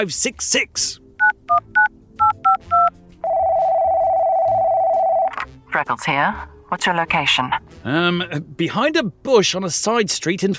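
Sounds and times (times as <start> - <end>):
speech: 0.0 - 1.7, 5.8 - 10.5
touch-tone dialing beeps on a voice-activated satellite phone in a dog's collar: 1.2 - 5.3
steady ringing tone on a satellite phone line: 1.8 - 5.4.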